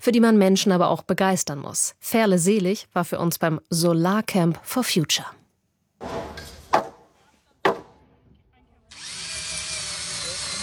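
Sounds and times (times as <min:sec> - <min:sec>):
speech: 0:00.0 - 0:05.4
sharp knocks: 0:06.0 - 0:08.0
power drill whining while driving screws into wooden beams: 0:08.9 - 0:10.6.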